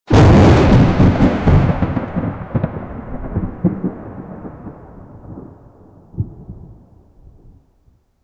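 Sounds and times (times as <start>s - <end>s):
big thunder clap: 0.1s - 7.7s.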